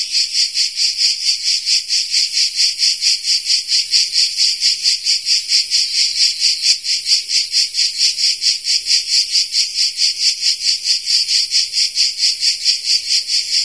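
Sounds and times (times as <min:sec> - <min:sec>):
grey cicada Tettigia singing a harsh high-pitched pulsing buzz: 0:00.0 - 0:13.6.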